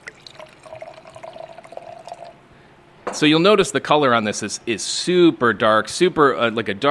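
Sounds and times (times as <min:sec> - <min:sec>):
dark amber mead of water and honey pouring into a glass: 0:00.0 - 0:02.4
speech: 0:03.1 - 0:06.9.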